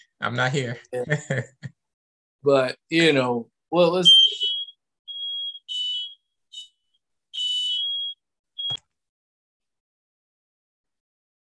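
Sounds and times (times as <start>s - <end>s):
speech: 0.2s - 1.8s, 2.4s - 4.4s
smoke alarm beeping: 4.0s - 8.8s.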